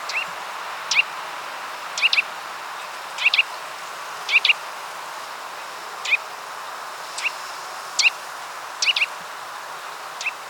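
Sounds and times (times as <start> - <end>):
Eurasian nuthatch Sitta europaea sharp calls: 0.0 - 0.3, 0.9 - 1.1, 2.0 - 2.3, 3.2 - 3.5, 4.3 - 4.6, 6.0 - 6.2, 7.2 - 7.4, 8.0 - 8.2, 8.8 - 9.1, 10.2 - 10.4
continuous hiss: 0.0 - 10.4.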